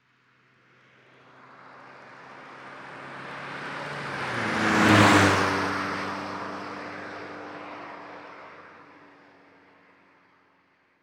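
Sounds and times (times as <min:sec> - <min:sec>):
compact car passing: 0:01.5 - 0:08.8.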